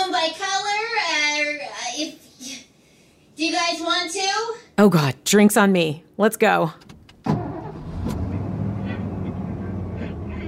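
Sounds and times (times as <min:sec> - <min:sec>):
speech: 0:00.2 - 0:00.6, 0:03.4 - 0:06.9
truck engine turning over and rumbling: 0:07.0 - 0:10.4.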